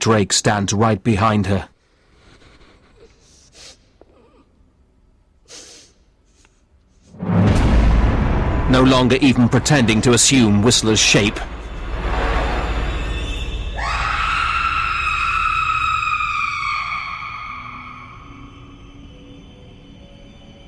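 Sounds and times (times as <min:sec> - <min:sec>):
speech: 0:00.0 - 0:01.7, 0:08.7 - 0:11.6
woman sniffing the air: 0:02.2 - 0:04.5, 0:05.4 - 0:07.1
loud rough burst of noise: 0:07.1 - 0:14.8
dull rumbling background: 0:07.1 - 0:14.9
mother screaming: 0:13.8 - 0:18.8.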